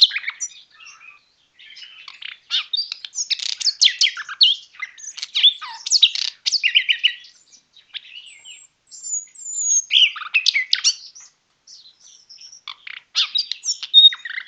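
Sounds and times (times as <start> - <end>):
common nightingale singing trills, chirps and whistled notes: 0.0 - 14.4.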